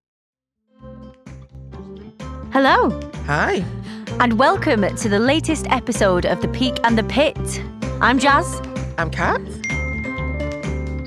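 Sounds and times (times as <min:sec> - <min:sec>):
speech: 0:02.5 - 0:09.6
phone notification ding: 0:09.6 - 0:10.4.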